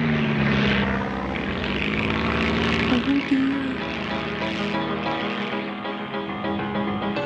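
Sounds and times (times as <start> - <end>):
small propeller plane engine droning while climbing: 0.0 - 7.2.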